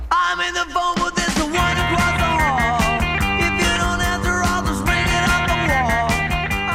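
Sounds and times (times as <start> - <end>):
full-band power pop song with guitar hook, drums and bass: 0.0 - 6.7
speech: 0.4 - 1.7
pounding drums: 0.8 - 6.7
bright catchy guitar hook: 1.3 - 6.7.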